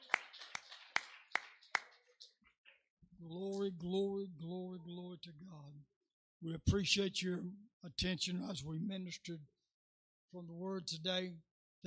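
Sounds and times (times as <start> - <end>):
audience clapping in praise: 0.0 - 2.4
hands clapping: 0.0 - 2.8, 3.4 - 3.7
speech: 3.2 - 9.6, 10.3 - 11.8.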